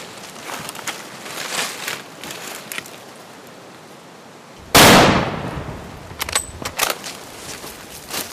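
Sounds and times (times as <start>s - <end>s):
faint outdoor rustling: 0.0s - 8.3s
gunshot during a bull hunt: 4.7s - 5.8s.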